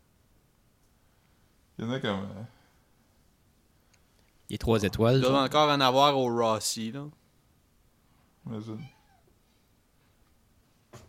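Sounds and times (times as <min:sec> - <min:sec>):
speech: 0:01.8 - 0:02.6, 0:04.5 - 0:07.2, 0:08.4 - 0:09.0
cat meowing: 0:08.7 - 0:09.3.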